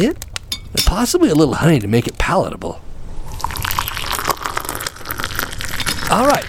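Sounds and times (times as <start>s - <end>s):
speech: 0.0s - 2.8s, 6.1s - 6.4s
warm water pouring into a cup or mug to make tea: 3.2s - 6.4s.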